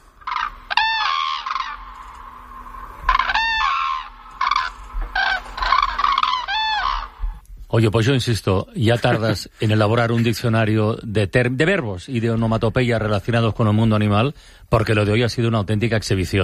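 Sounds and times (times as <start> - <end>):
common crane trumpeting bugled calls: 0.0 - 7.4
speech: 7.8 - 16.4.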